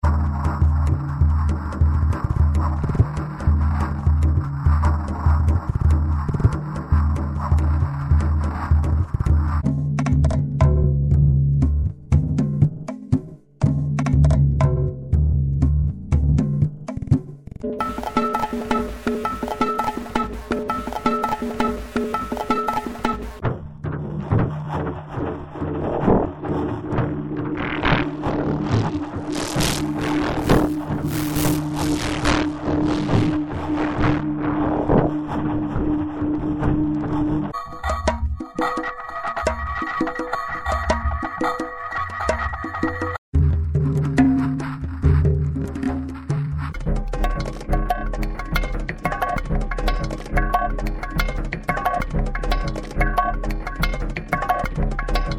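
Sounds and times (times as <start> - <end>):
experimental percussion: 0.0 - 55.3.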